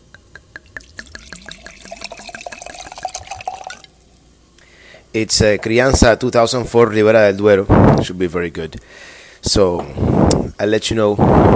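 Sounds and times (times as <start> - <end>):
red wine glugging from a bottle: 0.0 - 4.1
speech: 5.2 - 11.5.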